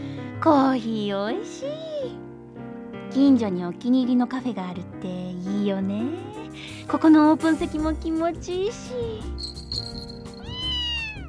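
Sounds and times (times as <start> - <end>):
speech: 0.4 - 2.3, 3.1 - 9.4
cat meowing: 10.3 - 11.2.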